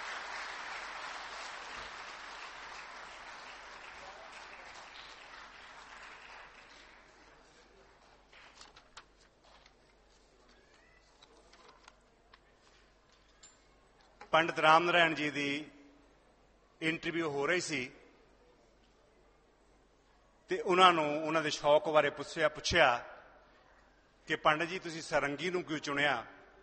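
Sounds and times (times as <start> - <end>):
audience applause welcoming a performer on stage: 0.0 - 7.7
speech: 14.3 - 15.8, 16.8 - 18.0, 20.5 - 23.1, 24.3 - 26.4.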